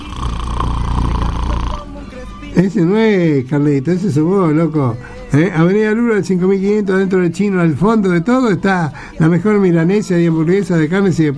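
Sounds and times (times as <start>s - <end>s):
person imitating snoring: 0.0s - 2.0s
speech: 2.6s - 11.3s.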